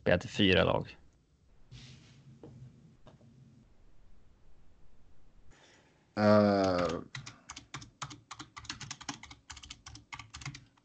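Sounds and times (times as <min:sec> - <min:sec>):
speech: 0:00.1 - 0:01.0, 0:06.2 - 0:07.2
typing on a computer keyboard: 0:06.6 - 0:10.8.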